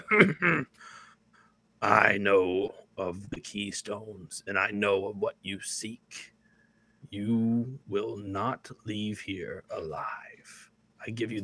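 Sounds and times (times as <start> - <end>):
heavy cough: 0.0 - 0.7
speech: 0.1 - 1.0, 1.8 - 6.3, 7.0 - 11.4.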